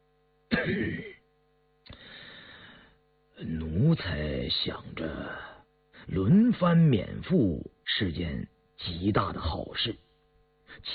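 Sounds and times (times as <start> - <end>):
light cough from a pale sickly-looking man: 0.5 - 1.2
speech: 0.6 - 1.2, 3.4 - 5.5, 6.1 - 10.0, 10.7 - 10.9.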